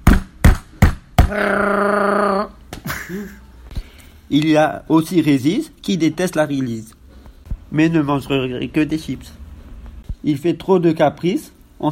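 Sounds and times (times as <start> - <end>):
sharp hammer strikes: 0.0 - 1.4
speech: 1.3 - 2.0, 4.3 - 7.0, 7.7 - 9.4, 10.2 - 11.8
brief low vocal sound: 1.3 - 2.6.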